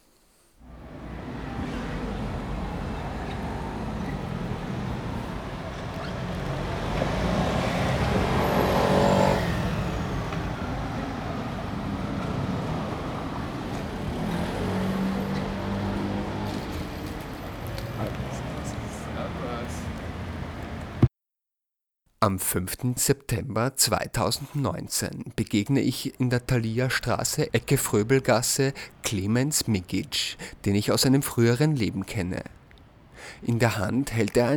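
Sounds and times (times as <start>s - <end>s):
cars passing on a city street: 0.6s - 21.1s, 26.8s - 33.4s
indistinct voices murmuring: 0.7s - 8.0s, 15.0s - 20.6s
speech: 22.2s - 32.6s, 33.2s - 34.5s.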